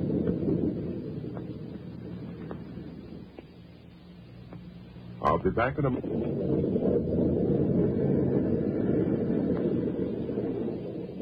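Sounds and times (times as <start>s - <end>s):
storm wind roaring aboard a boat at sea: 0.0s - 3.4s, 5.2s - 11.2s
speech: 5.3s - 8.3s.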